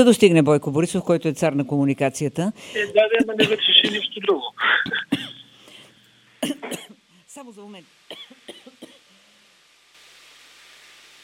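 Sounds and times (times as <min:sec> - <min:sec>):
speech: 0:00.0 - 0:05.4, 0:06.4 - 0:08.4
steady faint hiss: 0:02.5 - 0:11.2
person coughing: 0:03.2 - 0:05.6, 0:06.4 - 0:07.0.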